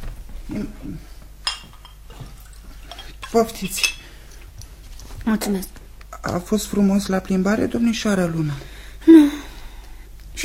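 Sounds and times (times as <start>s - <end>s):
speech: 0.5s - 1.2s, 3.3s - 4.0s, 5.3s - 9.5s
bright glass clink: 1.4s - 2.0s, 2.9s - 4.1s
quiet tableware handling: 1.4s - 4.1s.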